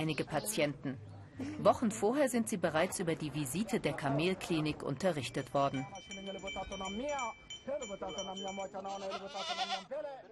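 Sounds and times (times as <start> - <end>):
busy outdoor crowd at a goat auction: 0.0 - 10.3
speech: 0.0 - 10.3
goats bleating at a goat auction in Kenya: 8.8 - 9.9.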